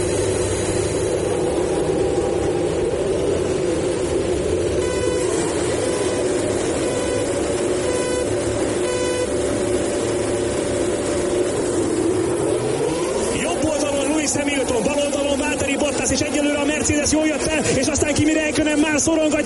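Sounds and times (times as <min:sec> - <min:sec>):
Formula 1 car engines roaring at race start: 0:00.0 - 0:19.4
speech: 0:19.0 - 0:19.4.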